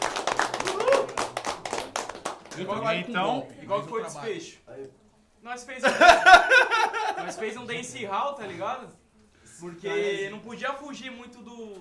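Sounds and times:
small group clapping: 0.0s - 3.6s
voice cheering: 0.6s - 1.3s
speech: 2.6s - 9.0s, 9.6s - 11.7s
laughter: 5.8s - 7.8s.

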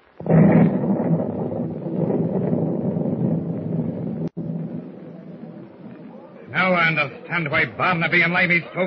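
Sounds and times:
heavy explosion rocking a wooden sailing ship: 0.0s - 6.4s
loud deep rumbling roar: 0.2s - 6.2s
speech: 6.9s - 8.8s.

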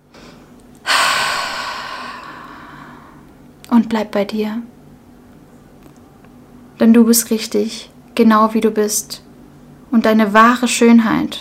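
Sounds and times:
deep breath drawn in: 0.1s - 3.3s
speech: 3.8s - 4.7s, 6.8s - 9.2s, 9.9s - 11.3s.

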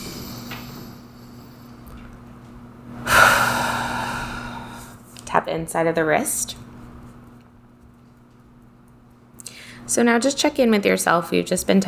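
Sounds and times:
deep breath during a tapping relaxation exercise: 0.0s - 2.1s, 2.9s - 5.1s, 9.4s - 9.9s
speech: 5.5s - 6.6s, 10.0s - 11.8s.

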